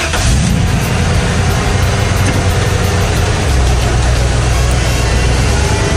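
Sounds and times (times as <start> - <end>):
broad road noise: 0.0 - 5.9
heavy truck engine rumbling: 0.0 - 5.9.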